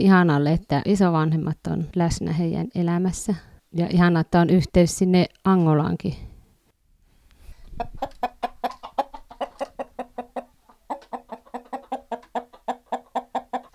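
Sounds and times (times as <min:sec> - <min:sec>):
speech: 0:00.0 - 0:06.3, 0:07.8 - 0:08.4
chickens clucking in a henhouse: 0:07.6 - 0:13.7.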